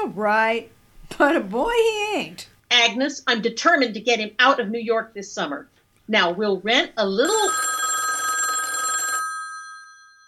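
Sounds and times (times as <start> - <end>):
speech: 0.0 - 7.8
telephone bell ringing: 7.2 - 10.2.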